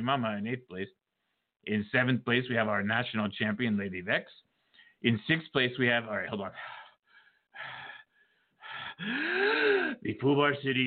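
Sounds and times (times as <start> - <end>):
speech: 0.0 - 1.0, 1.6 - 6.8, 9.0 - 10.8
deep breathing: 4.5 - 5.0, 6.6 - 10.0.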